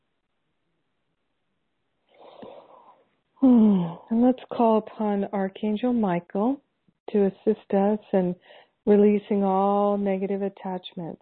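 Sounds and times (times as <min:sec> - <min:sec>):
slow deep breath drawn in: 0:02.1 - 0:04.1, 0:08.4 - 0:08.8
speech: 0:03.4 - 0:11.2.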